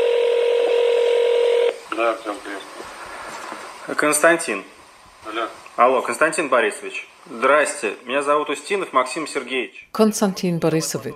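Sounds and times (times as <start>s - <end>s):
telephone ringback tone: 0.0s - 1.8s
speech: 2.0s - 3.0s, 3.9s - 11.1s.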